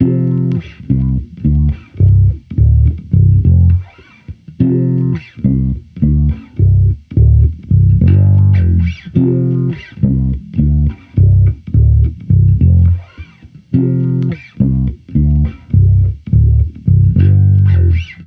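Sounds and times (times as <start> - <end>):
amped electric bass loop in D minor: 0.0 - 18.2.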